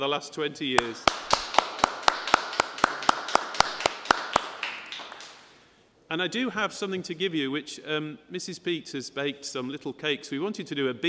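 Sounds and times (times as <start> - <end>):
speech: 0.0 - 1.4, 6.1 - 11.0
single person clapping a round of applause: 0.8 - 5.6.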